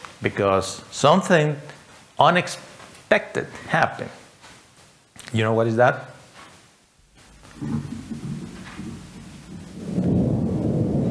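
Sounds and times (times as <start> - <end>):
speech: 0.2 - 4.2, 5.3 - 6.1, 7.6 - 8.0
low rolling thunder: 7.2 - 11.1.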